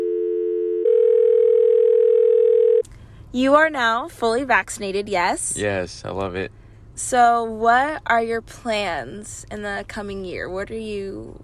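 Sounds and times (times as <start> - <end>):
telephone dial tone: 0.0 - 2.8
speech: 3.3 - 11.4.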